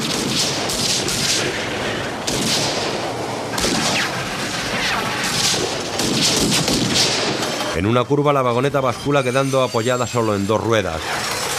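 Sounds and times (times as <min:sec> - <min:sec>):
gunshots from pursuers firing at people in a runaway mine cart: 0:00.0 - 0:07.8
speech: 0:07.8 - 0:11.4.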